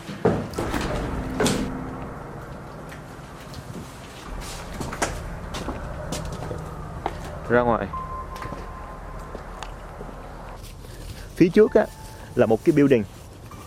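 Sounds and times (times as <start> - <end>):
sharp knocks and thuds: 0.2 - 10.9
door closing inside an old winery building: 0.3 - 11.0
steady low rumble: 0.5 - 12.7
speech: 7.5 - 8.0, 11.4 - 13.2.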